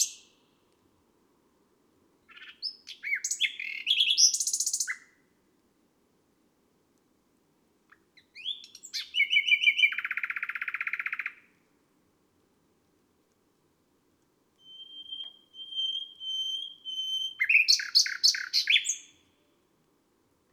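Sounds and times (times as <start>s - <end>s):
nightingale singing on a May night: 0.0s - 0.8s, 2.2s - 5.2s, 7.9s - 11.6s, 14.6s - 19.7s.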